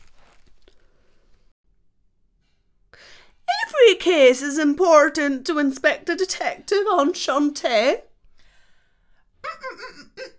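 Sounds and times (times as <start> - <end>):
paper crumpled and torn: 0.0 - 0.7
speech: 4.0 - 8.1.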